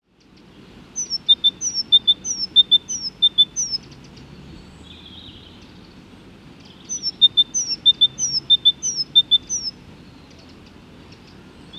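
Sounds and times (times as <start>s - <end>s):
Great tit Parus major song: 1.0s - 4.0s, 6.8s - 11.7s.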